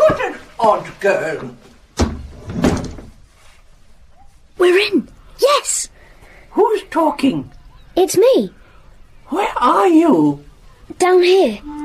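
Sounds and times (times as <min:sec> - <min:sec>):
speech: 0:00.6 - 0:01.7, 0:04.6 - 0:05.9, 0:06.6 - 0:08.6, 0:09.3 - 0:11.8
door: 0:02.0 - 0:03.1.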